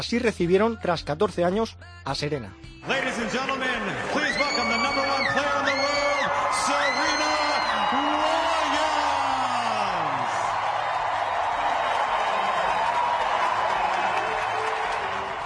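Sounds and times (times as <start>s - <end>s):
speech: 0.0s - 5.8s
huge crowd cheering and applauding in a tennis stadium: 2.9s - 15.4s
whoops and shouts from a tennis stadium crowd: 4.1s - 15.4s
whistles from a tennis stadium crowd: 4.2s - 8.3s.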